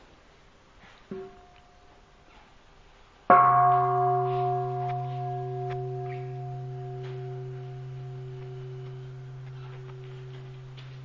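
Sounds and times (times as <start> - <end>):
mindfulness bell struck: 3.3 - 11.0.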